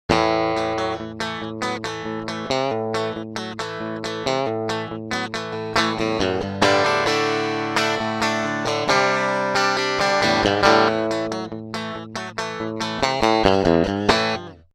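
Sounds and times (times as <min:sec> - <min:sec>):
unprocessed electric guitar through a Fender Pro Junior amplifier: 0:00.1 - 0:14.7.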